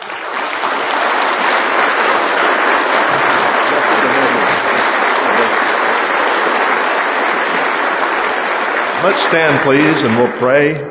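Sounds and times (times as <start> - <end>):
large audience applauding in a big room: 0.0 - 10.8
laughter: 2.9 - 5.9
speech: 9.0 - 10.8.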